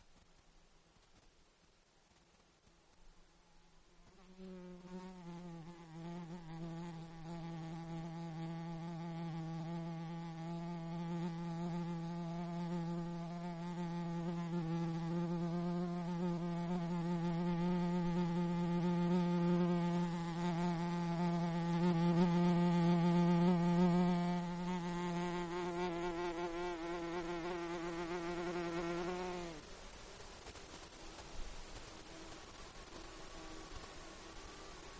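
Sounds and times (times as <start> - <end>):
mosquito at microphone in Alaska: 4.2 - 29.6.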